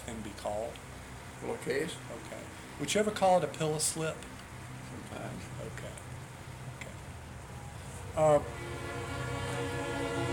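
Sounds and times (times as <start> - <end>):
speech: 0.1 - 4.4, 5.1 - 6.1, 8.2 - 9.0
passing train rumbling: 8.0 - 10.3
train horn blast: 8.4 - 10.3.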